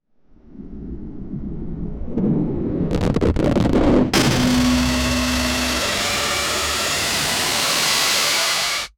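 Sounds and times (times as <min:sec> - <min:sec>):
intense building rumble: 0:02.0 - 0:08.9.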